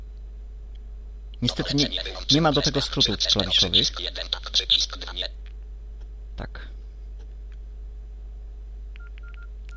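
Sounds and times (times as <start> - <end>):
steady low hum: 0.0 - 9.7
speech: 1.4 - 5.4, 6.4 - 6.8
mobile phone keypad tones while switching off screen reader: 9.0 - 9.7.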